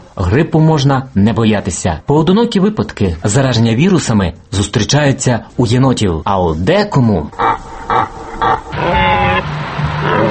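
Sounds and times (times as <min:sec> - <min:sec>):
speech: 0:00.2 - 0:07.7
pig grunting at a zoo: 0:07.3 - 0:09.4, 0:10.0 - 0:10.2
pig squealing snort with a harsh tonal edge: 0:07.3 - 0:10.2.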